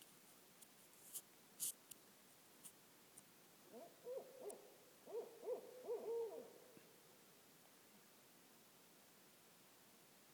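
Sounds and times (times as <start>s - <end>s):
barred owl hooting: 3.7s - 6.9s.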